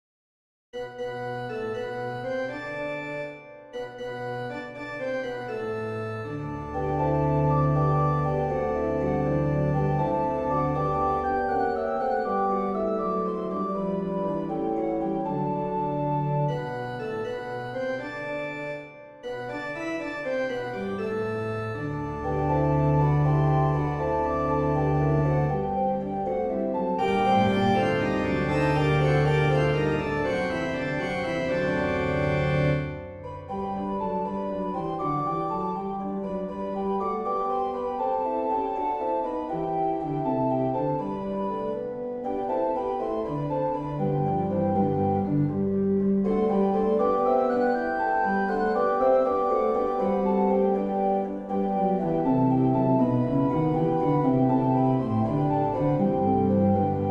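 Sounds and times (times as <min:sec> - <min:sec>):
musical improvisation: 0:00.8 - 0:57.0.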